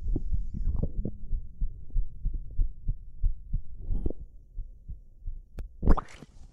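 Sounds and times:
quick heartbeat: 0:00.0 - 0:05.9.

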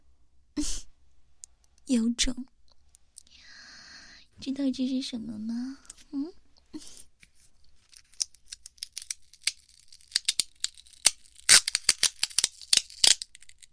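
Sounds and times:
speech: 0:01.9 - 0:02.6, 0:04.4 - 0:07.0
adhesive tape pulled off its roll: 0:07.8 - 0:13.7.

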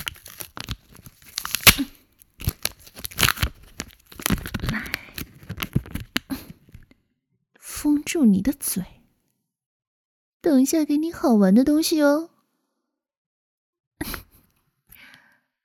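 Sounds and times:
adhesive tape pulled off a roll and torn: 0:00.0 - 0:05.2
speech: 0:08.1 - 0:09.0, 0:10.4 - 0:12.3.

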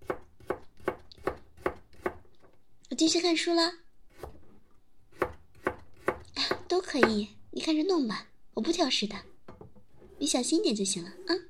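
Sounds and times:
knife chopping food on a board during home cooking: 0:00.0 - 0:02.2, 0:05.1 - 0:07.2
speech: 0:03.0 - 0:03.8, 0:06.8 - 0:09.3, 0:10.2 - 0:11.4.

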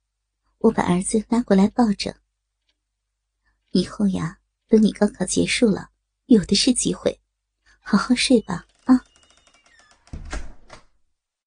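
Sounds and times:
speech: 0:00.6 - 0:02.2, 0:03.7 - 0:07.2, 0:07.8 - 0:09.1
bedroom door clicking shut: 0:08.7 - 0:11.0.

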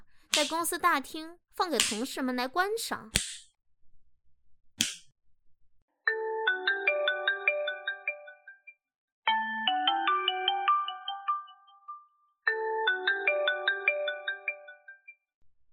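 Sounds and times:
sharp crack: 0:00.3 - 0:00.7, 0:01.8 - 0:02.1, 0:04.8 - 0:05.1
speech: 0:00.4 - 0:03.3
mobile phone ringtone for an incoming call playing a bright electronic melody: 0:06.1 - 0:08.7, 0:09.3 - 0:15.1.

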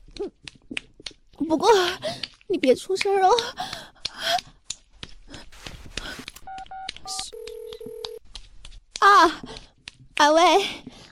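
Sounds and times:
speech: 0:01.5 - 0:03.8
phone keypad beeps: 0:06.4 - 0:08.2.

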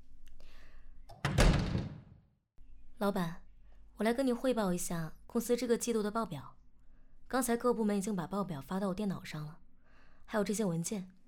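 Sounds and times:
office door being shut with a low thud: 0:01.1 - 0:02.2
speech: 0:03.0 - 0:03.4, 0:04.0 - 0:06.6, 0:07.3 - 0:09.6, 0:10.3 - 0:11.2.

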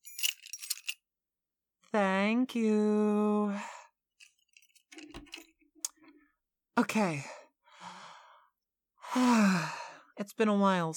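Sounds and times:
keys jangling as they are handed over: 0:00.0 - 0:01.0, 0:04.2 - 0:06.1
speech: 0:01.9 - 0:03.7, 0:06.8 - 0:07.4, 0:09.2 - 0:10.9.

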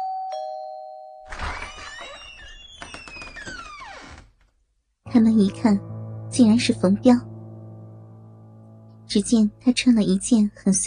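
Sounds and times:
doorbell chiming with a clear sustained tone: 0:00.0 - 0:01.3
speech: 0:05.1 - 0:07.3, 0:09.2 - 0:10.8.

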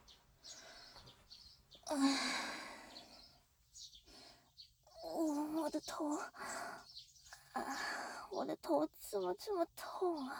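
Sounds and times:
birds chirping: 0:00.0 - 0:10.3
speech: 0:01.9 - 0:02.4, 0:05.8 - 0:06.6, 0:08.3 - 0:10.3
loud breathy sigh: 0:01.9 - 0:02.9.

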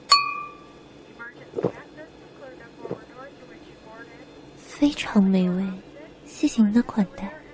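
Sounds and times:
wine glasses clinking in a toast over a 1982 Lafite: 0:00.0 - 0:00.7
steady low hum in an airplane cabin about to take off: 0:00.0 - 0:07.5
soft talking in an airplane cabin: 0:01.1 - 0:07.5
speech: 0:04.8 - 0:05.8, 0:06.4 - 0:07.4.

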